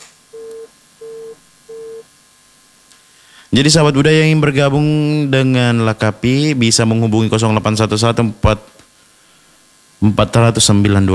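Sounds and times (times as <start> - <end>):
faint hiss: 0.0 - 11.1
dropped phone call line tone beeps: 0.3 - 2.1
speech: 3.5 - 8.8, 10.0 - 11.1.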